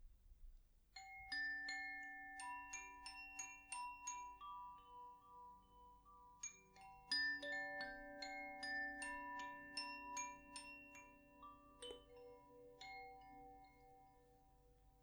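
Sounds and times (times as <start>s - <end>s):
Koshi fire wind chime: 1.0s - 15.0s.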